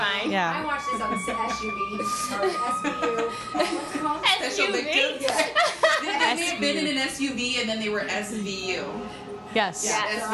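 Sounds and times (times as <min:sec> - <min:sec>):
speech: 0:00.2 - 0:10.3
ambulance siren wailing outside: 0:00.4 - 0:05.0
laughter: 0:01.1 - 0:07.0.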